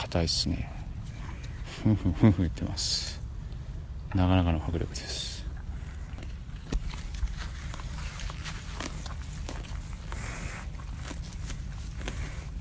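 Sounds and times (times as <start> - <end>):
steady low outdoor rumble: 0.0 - 12.5
speech: 0.1 - 0.8, 1.8 - 3.2, 4.1 - 5.3
cow grazing, crunching and tearing grass: 4.9 - 12.5.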